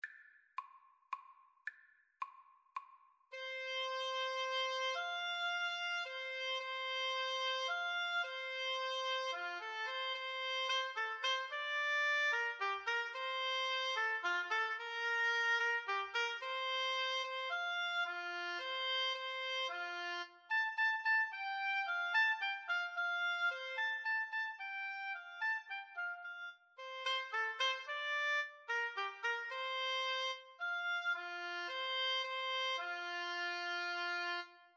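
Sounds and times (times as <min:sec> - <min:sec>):
flute and oboe duet: 0:03.3 - 0:34.7.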